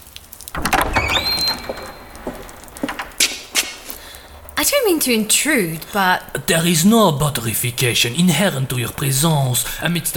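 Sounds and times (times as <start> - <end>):
door opening with a scrape and rising hinge squeal: 0.6 - 3.5
soft knocks and clatters: 0.6 - 4.0
speech: 4.6 - 10.1.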